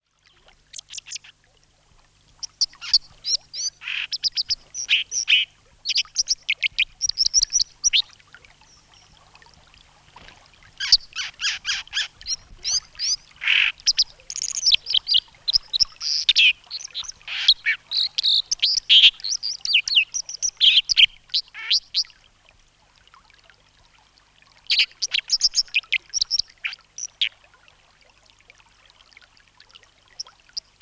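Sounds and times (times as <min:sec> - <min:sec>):
dipper bird calling: 0:02.4 - 0:09.1, 0:10.8 - 0:21.8, 0:30.6 - 0:30.8.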